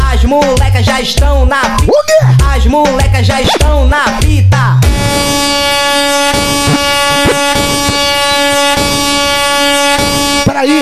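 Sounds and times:
speech: 0:00.2 - 0:07.7, 0:10.6 - 0:10.8
air-horn blast sound effect played by a DJ during a live party set: 0:04.8 - 0:10.8
brief clicks and thumps: 0:06.6 - 0:08.3.

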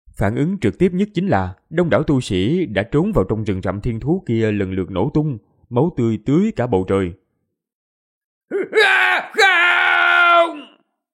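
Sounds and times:
speech: 0:00.2 - 0:07.2
powerful warrior giving an enraged roaring scream: 0:08.5 - 0:10.8.

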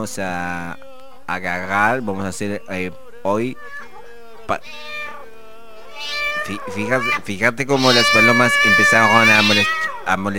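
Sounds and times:
speech: 0:00.0 - 0:03.9, 0:04.5 - 0:05.0, 0:06.0 - 0:10.3
cat meowing near pigeons: 0:03.6 - 0:10.2.

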